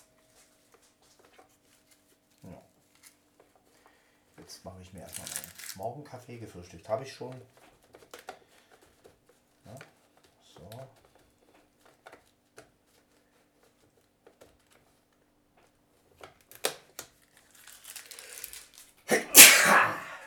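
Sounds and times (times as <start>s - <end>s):
soft rustling: 0.0s - 16.3s
speech: 4.5s - 7.7s
person sneezing: 19.1s - 20.2s.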